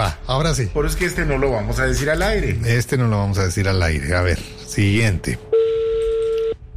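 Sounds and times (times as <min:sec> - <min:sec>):
speech: 0:00.1 - 0:05.5
telephone call ringing out: 0:05.5 - 0:06.6.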